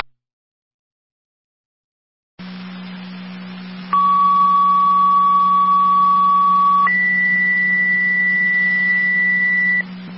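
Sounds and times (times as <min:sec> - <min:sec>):
radio hiss and hum: 0:02.4 - 0:10.1
fire dispatch alert tones over a radio channel for a fire alarm activation: 0:03.9 - 0:09.8.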